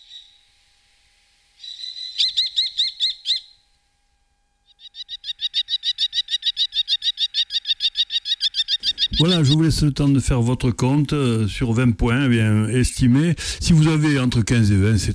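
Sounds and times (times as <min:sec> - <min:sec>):
common kestrel calling: 0:00.0 - 0:00.5, 0:01.6 - 0:03.7, 0:04.6 - 0:10.3
speech: 0:09.2 - 0:15.1.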